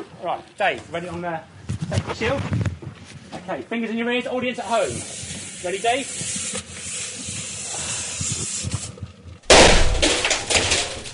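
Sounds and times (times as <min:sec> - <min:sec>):
speech: 0:00.2 - 0:02.6, 0:03.3 - 0:06.5
CO2 gas hissing: 0:04.6 - 0:09.0
CO2 pressure burst bang: 0:09.5 - 0:11.1.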